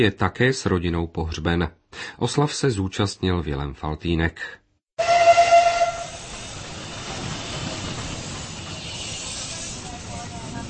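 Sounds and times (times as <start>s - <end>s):
speech: 0.0s - 5.1s
steam locomotive whistle: 5.0s - 6.3s
hissing steam: 5.6s - 10.6s.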